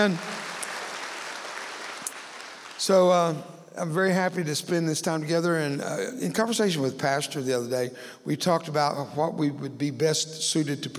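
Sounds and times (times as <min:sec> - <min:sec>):
speech: 0:00.0 - 0:00.3, 0:02.8 - 0:10.9
crowd clapping: 0:00.0 - 0:03.3.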